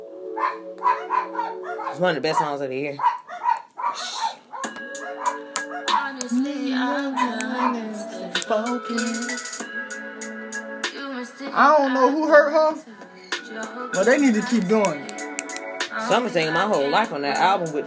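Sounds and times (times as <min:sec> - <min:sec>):
music: 0:00.0 - 0:02.5, 0:04.1 - 0:17.8
several dogs barking in sharp bursts: 0:00.2 - 0:06.1, 0:07.0 - 0:08.0
speech: 0:00.4 - 0:03.2, 0:06.3 - 0:09.5, 0:11.4 - 0:12.9, 0:13.5 - 0:15.2, 0:16.0 - 0:17.8.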